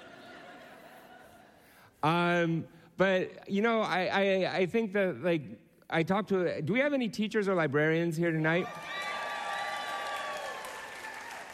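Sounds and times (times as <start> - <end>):
laughter: 0.0 - 1.8
speech: 2.0 - 9.0
live audience clapping: 8.6 - 11.5.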